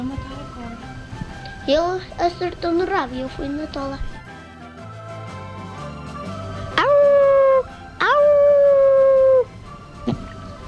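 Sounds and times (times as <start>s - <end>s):
speech: 1.7s - 4.1s
person imitating a wolf howl: 6.8s - 9.5s.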